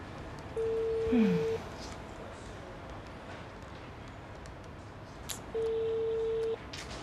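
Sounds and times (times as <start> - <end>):
phone ringback tones of an unanswered call: 0.6 - 1.6, 5.5 - 6.6.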